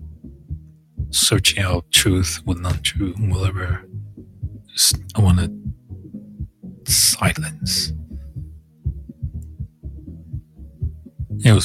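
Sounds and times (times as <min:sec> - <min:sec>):
person's heartbeat thumping: 0:00.5 - 0:01.8, 0:04.4 - 0:11.6
speech: 0:01.1 - 0:03.9, 0:04.8 - 0:05.8, 0:06.9 - 0:08.1, 0:11.4 - 0:11.6.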